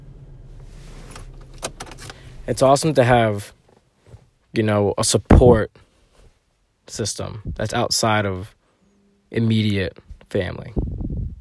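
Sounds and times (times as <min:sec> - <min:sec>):
car engine idling: 0:00.0 - 0:03.8
speech: 0:02.5 - 0:03.6, 0:04.5 - 0:05.8, 0:06.9 - 0:08.6, 0:09.3 - 0:10.8.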